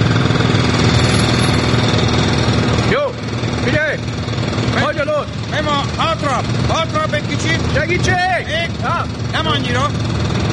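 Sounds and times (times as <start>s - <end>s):
construction machinery at an office building construction site: 0.0s - 10.5s.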